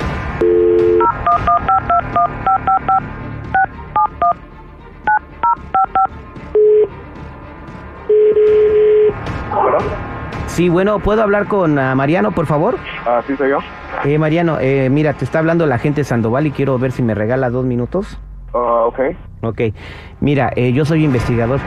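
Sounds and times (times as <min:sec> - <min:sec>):
long steady telephone tone: 0:00.4 - 0:03.0, 0:03.6 - 0:04.4, 0:05.1 - 0:06.9, 0:08.1 - 0:09.1
telephone dial tone: 0:00.4 - 0:03.0, 0:05.1 - 0:06.9, 0:08.1 - 0:09.1
touch-tone dialing of a phone number: 0:00.4 - 0:03.0, 0:03.6 - 0:04.4, 0:05.1 - 0:06.9
speech: 0:10.6 - 0:21.6.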